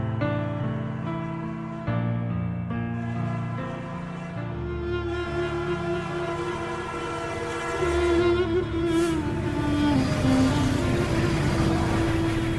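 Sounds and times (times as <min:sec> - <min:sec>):
train rumbling past: 0:00.2 - 0:12.5
train horn blaring in long sustained blasts: 0:03.0 - 0:12.4.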